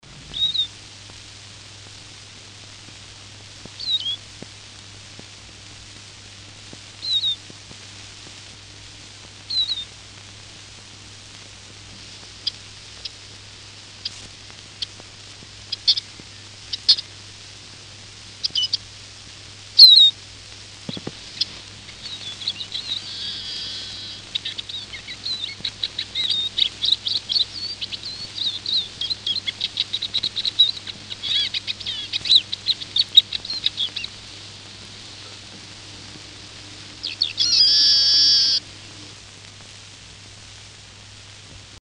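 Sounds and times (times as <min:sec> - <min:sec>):
Eurasian siskin: 0:00.3 - 0:00.7, 0:03.8 - 0:04.2, 0:07.0 - 0:07.4, 0:09.5 - 0:09.9, 0:15.7 - 0:17.1, 0:18.4 - 0:18.8, 0:19.8 - 0:20.2, 0:20.9 - 0:36.2, 0:37.0 - 0:38.6.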